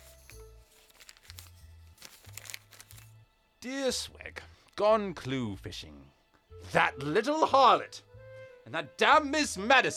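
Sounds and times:
small scrap of paper crinkling as it is unfolded: 0:00.0 - 0:03.2
speech: 0:03.6 - 0:08.1, 0:08.7 - 0:09.9.

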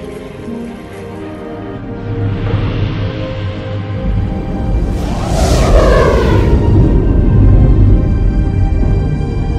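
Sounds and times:
bright rushing whoosh of a starship engaging warp drive: 0:02.3 - 0:08.6
starship engaging full warp drive: 0:03.2 - 0:09.4.

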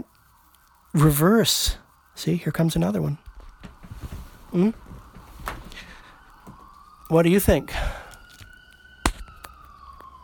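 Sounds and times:
emergency vehicle siren wailing: 0:00.0 - 0:10.2
speech: 0:01.0 - 0:03.2, 0:04.5 - 0:04.8, 0:07.1 - 0:07.9
sharp knocks or bangs: 0:09.1 - 0:09.4.

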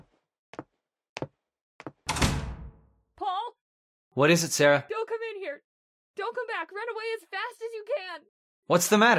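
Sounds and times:
door banging open: 0:02.1 - 0:02.9
speech: 0:04.1 - 0:05.0, 0:08.7 - 0:09.1.

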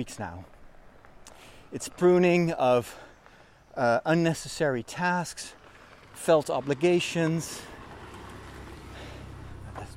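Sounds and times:
speech: 0:00.0 - 0:00.6, 0:01.7 - 0:03.1, 0:03.8 - 0:05.6, 0:06.2 - 0:07.8
car driving past outdoors: 0:05.6 - 0:09.9.

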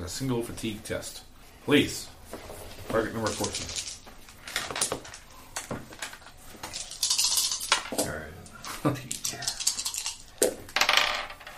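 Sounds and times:
speech: 0:00.1 - 0:03.9, 0:08.8 - 0:09.1
dice rolling on a hard tabletop during a tabletop game: 0:02.9 - 0:08.1, 0:09.2 - 0:11.5.

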